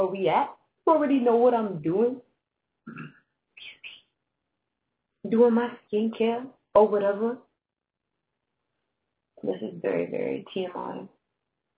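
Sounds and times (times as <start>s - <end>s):
speech: 0.0s - 2.3s, 2.9s - 3.2s, 5.2s - 7.5s, 9.4s - 11.2s
person burping: 2.9s - 3.2s.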